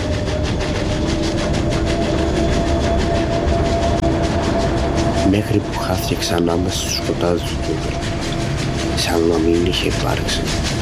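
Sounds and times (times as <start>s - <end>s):
train rolling past slowly: 0.0s - 10.8s
train wheels clattering over rail joints: 0.0s - 10.8s
speech: 5.3s - 8.0s, 9.1s - 10.8s.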